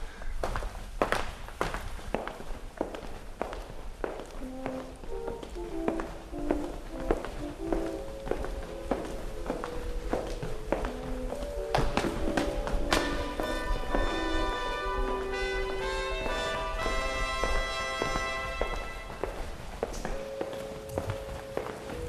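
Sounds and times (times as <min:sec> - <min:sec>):
footsteps of people walking: 0:00.0 - 0:22.0
short tonal notes: 0:12.4 - 0:19.4.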